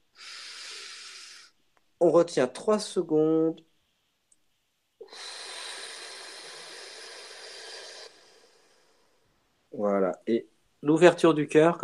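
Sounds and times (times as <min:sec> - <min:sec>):
deep breath in: 0:00.1 - 0:01.6, 0:05.0 - 0:09.3
speech: 0:02.0 - 0:03.7, 0:09.8 - 0:11.8.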